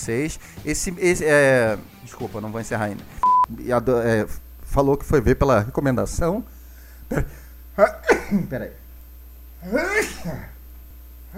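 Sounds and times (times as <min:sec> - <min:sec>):
speech: 0:00.0 - 0:08.8, 0:09.6 - 0:10.6
person sneezing: 0:07.1 - 0:08.5, 0:09.6 - 0:10.6.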